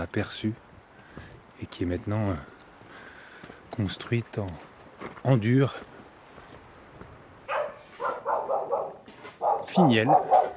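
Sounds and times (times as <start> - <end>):
speech: 0.0 - 0.6, 1.6 - 2.5, 3.7 - 5.9, 9.8 - 10.4
small dog barking in the hamlet of Finiel: 7.5 - 10.5.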